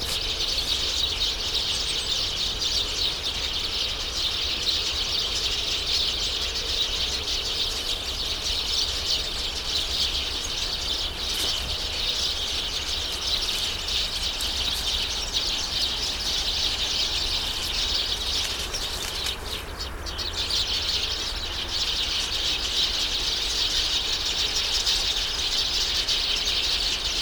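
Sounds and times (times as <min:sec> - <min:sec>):
Eurasian tree sparrows: 0:00.0 - 0:27.2.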